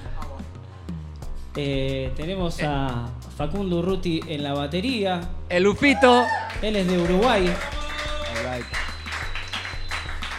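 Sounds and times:
speech: 1.6s - 7.7s, 8.4s - 8.8s
audience applause and cheering for the band's drummer: 6.0s - 10.3s.

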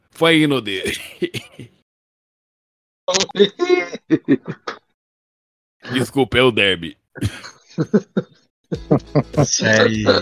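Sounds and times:
speech: 0.2s - 1.8s, 3.1s - 4.8s, 5.9s - 10.1s
loud hacking coughs: 0.9s - 1.8s, 7.2s - 7.6s
laughter: 3.4s - 4.9s, 7.2s - 10.1s.

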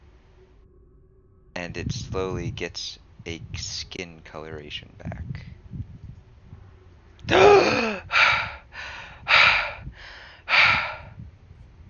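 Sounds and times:
speech: 1.6s - 5.8s
heavier ragged breaths: 7.3s - 11.2s
man's deep rasping gasp for air: 7.3s - 11.2s.

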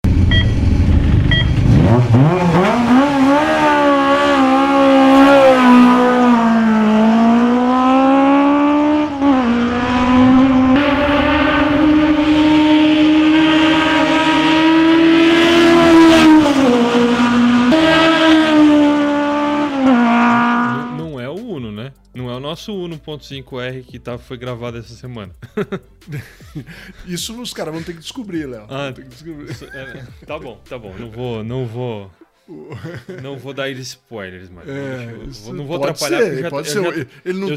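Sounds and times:
high-revving inline four-cylinder single-cam 8-valve car engine: 0.0s - 21.1s
speech: 23.1s - 37.5s
laughter: 25.4s - 28.5s, 29.2s - 31.2s, 32.5s - 33.8s, 36.2s - 37.5s.

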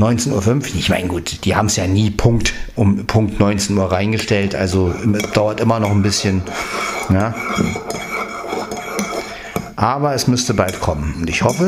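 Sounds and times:
speech: 0.0s - 8.1s, 9.8s - 11.6s
ceramic coffee cups clinking in a toast: 4.2s - 9.7s.

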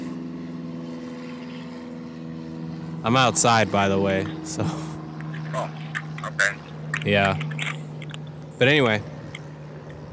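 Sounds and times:
propeller airplane passing overhead: 0.0s - 10.1s
speech: 3.0s - 7.5s, 8.6s - 9.1s.

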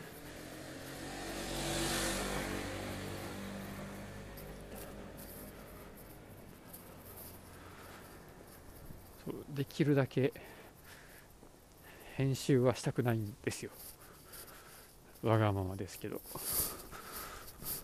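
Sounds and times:
motorcycle engine riding past on a street: 0.0s - 7.6s
low outdoor noise: 0.0s - 17.8s
speech: 9.2s - 10.6s, 12.2s - 14.0s, 15.2s - 16.7s.

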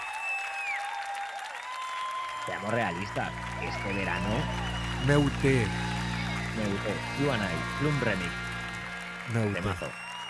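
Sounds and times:
sharp whistles: 0.0s - 1.0s, 3.6s - 6.4s, 9.8s - 10.2s
large crowd applauding: 0.0s - 10.2s
speech: 2.4s - 5.9s, 6.6s - 8.4s, 9.3s - 10.0s.

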